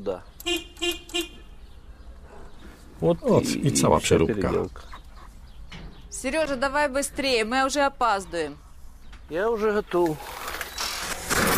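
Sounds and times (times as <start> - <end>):
speech: 0.0 - 1.3, 3.0 - 5.0, 6.2 - 8.6, 9.3 - 10.4
vehicle horn toots on a vehicle adapted with handlebar throttle lever: 0.4 - 1.7.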